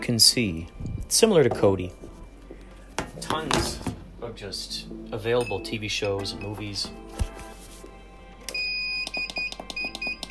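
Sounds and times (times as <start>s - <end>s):
speech: 0.0s - 2.0s, 3.2s - 7.2s
phone alarm beeping: 5.4s - 6.9s, 8.5s - 10.2s.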